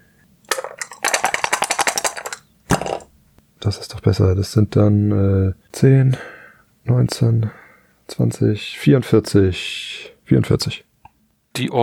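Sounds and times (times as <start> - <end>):
dice clattering across a hard surface in a dice game: 0.5 - 3.1
speech: 3.6 - 10.9, 11.6 - 11.8.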